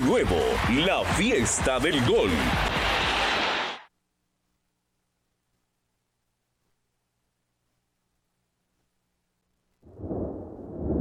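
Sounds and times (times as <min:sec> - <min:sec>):
speech: 0:00.1 - 0:03.0
loud thunderclap: 0:09.8 - 0:10.9.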